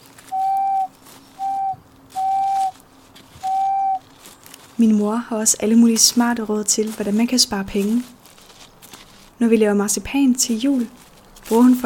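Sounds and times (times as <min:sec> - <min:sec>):
carved wooden whistle being blown: 0:00.2 - 0:02.8, 0:03.4 - 0:04.1
speech: 0:04.8 - 0:08.2, 0:09.4 - 0:11.8.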